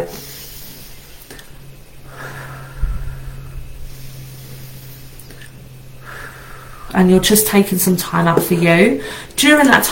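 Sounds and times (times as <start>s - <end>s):
low steady hum: 0.0s - 9.9s
slow deep breath in and out as a breathing exercise: 0.2s - 7.0s
speech: 7.0s - 9.9s.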